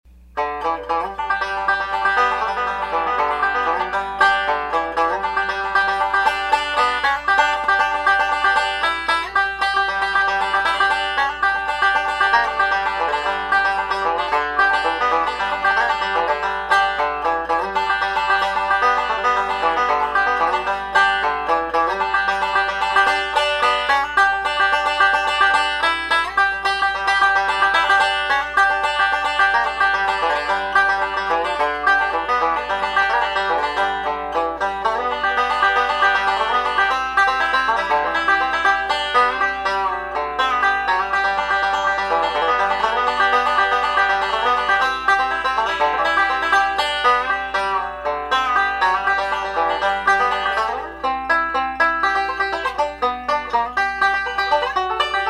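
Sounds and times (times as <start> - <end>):
banjo: 0.1 - 55.2.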